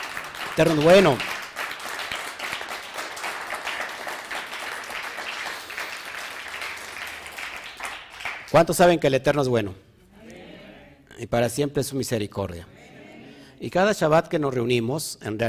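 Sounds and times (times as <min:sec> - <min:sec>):
audience applauding: 0:00.0 - 0:08.6
speech: 0:00.6 - 0:01.3, 0:08.5 - 0:09.8, 0:11.2 - 0:12.8, 0:13.6 - 0:15.4.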